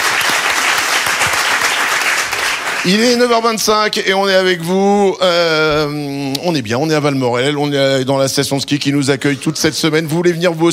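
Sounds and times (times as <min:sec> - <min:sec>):
audience applauding at a ski resort: 0:00.0 - 0:03.6
speech: 0:02.8 - 0:10.7.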